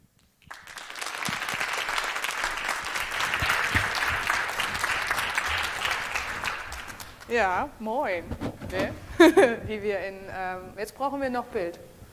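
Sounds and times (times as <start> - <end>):
applause from a sizable audience welcoming speakers on stage: 0.4 - 7.4
speech: 7.3 - 11.9.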